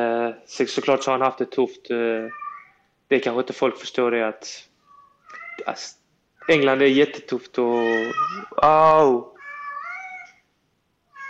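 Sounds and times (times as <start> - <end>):
speech: 0.0 - 2.4, 3.1 - 4.7, 5.6 - 9.3
cat meowing: 2.2 - 2.9, 4.9 - 5.8, 6.4 - 8.7, 9.3 - 10.4.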